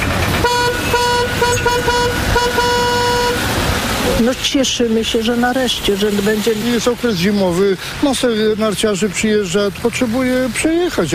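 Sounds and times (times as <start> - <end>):
cars driving across a temporary bridge: 0.0 - 11.1
steady traffic rumble: 0.0 - 11.1
car horn honking in short bursts and a longer blast: 0.4 - 3.5
speech: 4.2 - 11.1.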